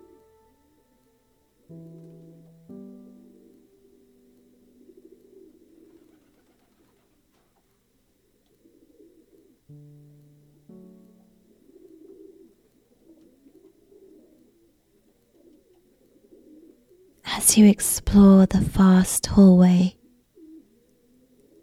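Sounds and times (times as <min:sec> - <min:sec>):
pigeons cooing while roosting: 0:00.0 - 0:17.2, 0:20.0 - 0:21.6
speech: 0:17.4 - 0:20.0.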